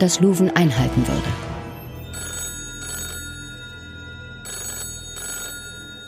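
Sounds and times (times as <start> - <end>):
speech: 0.0 - 1.5
telephone ringing with electronic trills: 1.7 - 6.0.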